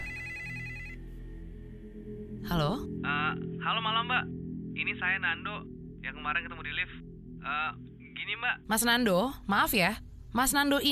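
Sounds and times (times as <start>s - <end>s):
apartment landline telephone ringing with electronic bell: 0.0s - 1.0s
speech: 2.2s - 10.9s.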